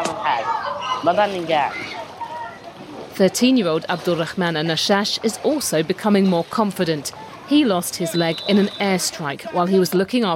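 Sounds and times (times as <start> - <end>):
water sloshing and splashing in a swimming pool in Khan Yunis: 0.0 - 10.3
children's voices calling out loudly: 0.1 - 2.8
speech: 1.0 - 1.8, 3.2 - 10.3.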